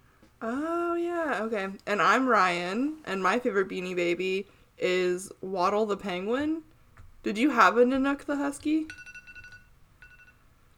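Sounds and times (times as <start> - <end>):
speech: 0.4 - 9.1
phone alarm with quick high electronic beeps: 8.9 - 10.4.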